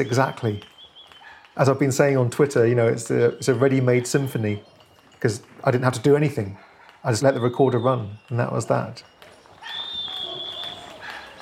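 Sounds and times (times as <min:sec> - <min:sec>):
speech: 0:00.0 - 0:00.7, 0:01.6 - 0:09.8
quiet outdoor noise: 0:00.0 - 0:11.4
dog bark: 0:01.0 - 0:01.6, 0:06.4 - 0:07.5, 0:09.6 - 0:11.4.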